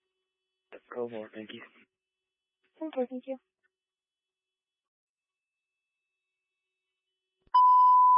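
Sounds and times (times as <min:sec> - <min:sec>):
speech: 0:01.0 - 0:01.9, 0:02.8 - 0:03.5
dispatch timer alert steady electronic beep: 0:07.6 - 0:08.1.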